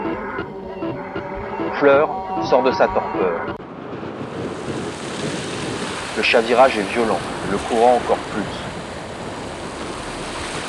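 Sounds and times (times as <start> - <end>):
big ocean waves crashing toward rocks: 0.0 - 10.6
speech: 1.8 - 3.6, 6.2 - 8.6
steady rush of wind-blown water: 3.0 - 10.6.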